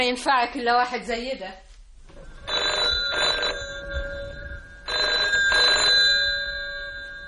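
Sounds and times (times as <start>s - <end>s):
speech: 0.0s - 1.7s
telephone ringing: 2.2s - 7.2s.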